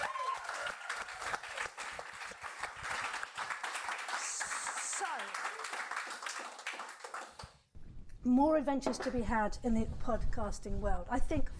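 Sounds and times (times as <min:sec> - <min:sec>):
crowd applauding: 0:00.0 - 0:07.7
speech: 0:08.2 - 0:11.5.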